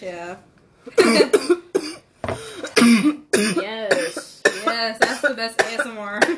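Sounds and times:
speech: 0.0 - 1.6
person coughing after inhaling smoke from a bong: 0.9 - 6.3.

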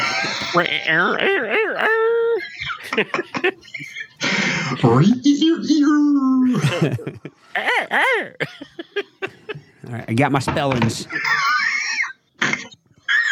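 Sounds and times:
person imitating a dog crowing like a rooster while singing a TV theme song: 0.0 - 2.5, 7.6 - 8.4
laughter and chuckling: 0.0 - 4.3, 6.5 - 9.9, 11.0 - 13.3
speech: 0.6 - 2.1, 2.9 - 8.8, 9.9 - 11.6.

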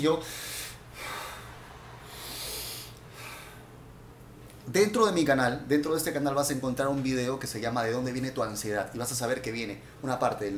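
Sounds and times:
speech: 0.0 - 0.5, 4.7 - 10.5
slow deep breaths: 0.2 - 4.0.

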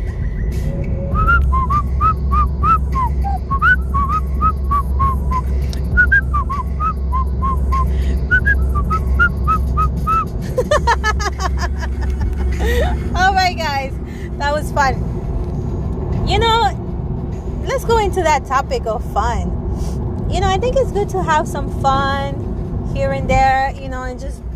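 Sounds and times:
steady low engine-like rumble: 0.0 - 24.5
person whistling a quick chirpy tune: 1.0 - 10.3
laughter: 10.6 - 13.0
speech: 18.2 - 19.6, 20.3 - 22.4, 23.0 - 24.4.

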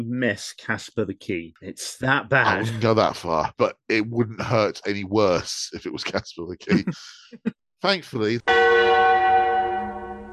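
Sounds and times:
speech: 0.0 - 9.2
laughter: 2.5 - 7.2, 7.9 - 8.4
church bell ringing: 8.5 - 10.3.

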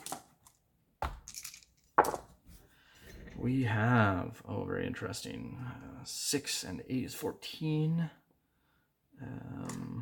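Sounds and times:
eight-sided dice rattling across a hard dice tray: 1.2 - 2.2
speech: 3.4 - 8.2, 9.2 - 9.8.

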